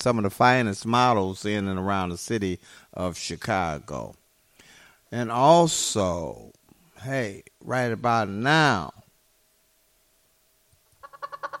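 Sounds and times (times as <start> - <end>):
speech: 0.0 - 4.2, 5.1 - 9.0
chicken clucking: 11.0 - 11.5.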